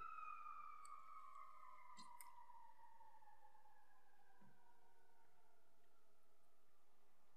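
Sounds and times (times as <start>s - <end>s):
ambulance siren passing by: 0.0s - 5.6s.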